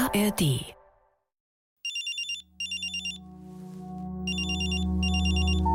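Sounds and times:
speech: 0.1s - 0.8s
telephone ringing with a bright trilling electronic tone: 1.9s - 3.2s, 4.3s - 5.7s.

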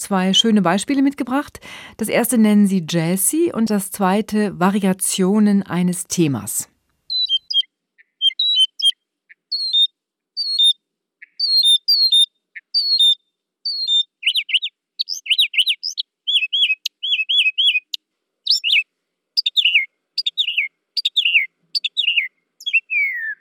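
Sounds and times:
speech: 0.0s - 6.7s
mockingbird singing: 7.1s - 18.8s, 19.4s - 23.3s.

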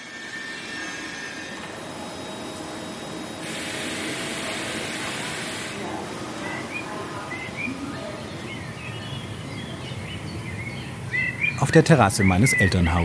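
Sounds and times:
steady loud outdoor hiss: 0.0s - 13.0s
birds chirping and calling in a rural garden: 6.5s - 13.0s
speech: 11.6s - 13.0s.

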